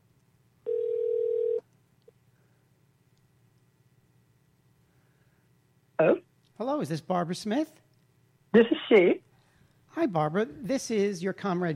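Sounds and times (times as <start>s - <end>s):
hiss: 0.0s - 11.7s
telephone dial tone: 0.7s - 1.6s
speech: 6.0s - 7.8s, 8.5s - 9.2s, 10.0s - 11.7s.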